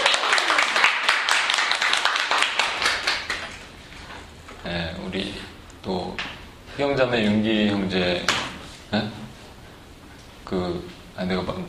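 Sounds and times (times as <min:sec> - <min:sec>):
room full of people applauding warmly: 0:00.0 - 0:03.7
speech: 0:06.8 - 0:09.2, 0:10.5 - 0:11.6.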